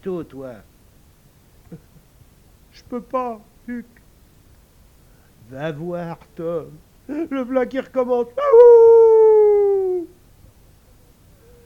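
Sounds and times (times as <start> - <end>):
speech: 0.0 - 0.7, 1.7 - 2.0, 2.8 - 4.0, 5.5 - 8.9
dog howling in one sustained steady tone: 8.4 - 10.1.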